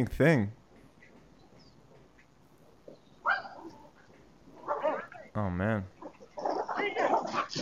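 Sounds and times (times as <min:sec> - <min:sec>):
speech: 0:00.0 - 0:00.6, 0:05.4 - 0:06.0
small dogs barking at a bear: 0:03.2 - 0:05.3, 0:06.0 - 0:07.6.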